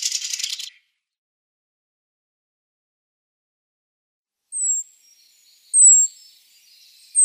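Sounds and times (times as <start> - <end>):
mistle thrush short dry rattling churr: 0.0 - 0.7.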